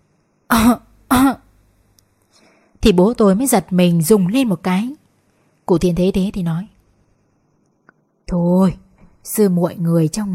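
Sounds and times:
speech: 0.5s - 1.4s, 2.8s - 5.0s, 5.7s - 6.7s, 8.3s - 10.3s
throaty coughs from an elderly person: 0.5s - 1.5s.

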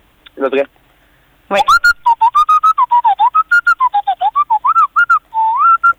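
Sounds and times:
speech: 0.4s - 0.8s, 1.5s - 2.0s
person whistling an imitation of a robot's beeps: 1.6s - 5.9s.

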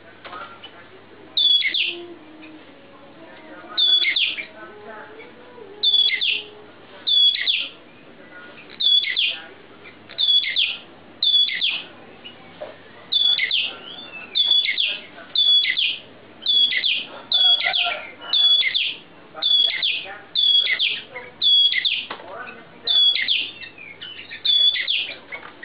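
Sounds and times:
Oriental magpie-robin whistled song: 1.4s - 2.0s, 3.8s - 4.5s, 5.8s - 6.5s, 7.1s - 7.8s, 8.8s - 9.4s, 10.2s - 11.8s, 13.1s - 22.1s, 22.8s - 25.6s.

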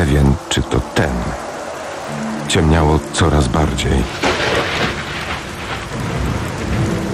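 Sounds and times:
speech: 0.0s - 1.4s, 2.1s - 4.9s
heavy thunderstorm rain pouring beside a motorway: 0.0s - 7.1s
water streaming down car windows: 0.0s - 7.1s
thunder crack: 4.0s - 7.1s.

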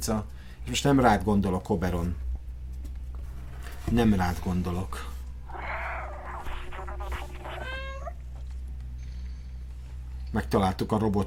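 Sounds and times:
speech: 0.0s - 2.2s, 3.9s - 5.1s, 10.3s - 11.2s
cat meowing in a video game: 5.5s - 8.2s.

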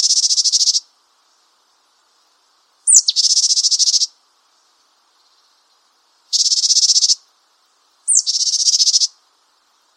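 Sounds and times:
Japanese tit uttering dry buzzing calls: 0.0s - 0.8s, 2.9s - 4.1s, 6.3s - 7.2s, 8.1s - 9.2s.

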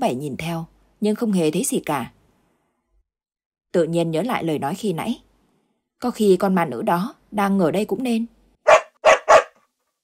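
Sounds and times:
speech: 0.0s - 2.2s, 3.7s - 5.3s, 6.0s - 8.4s
black dog barking: 8.6s - 9.6s.

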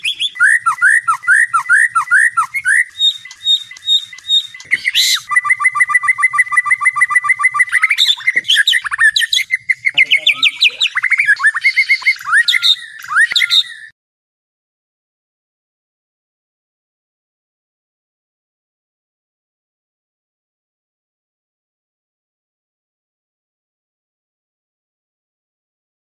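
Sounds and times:
white-rumped shama song: 0.0s - 13.9s.

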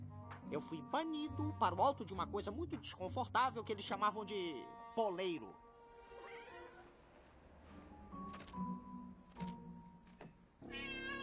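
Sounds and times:
speech: 0.5s - 5.6s
cat meowing: 10.6s - 11.2s.

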